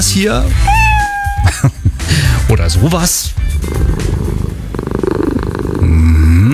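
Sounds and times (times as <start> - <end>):
speech: 0.0 - 0.9, 1.5 - 1.8, 2.5 - 4.1
cat meows played back from a smartphone: 0.5 - 1.5
cat purring played back from a smartphone: 3.6 - 6.1.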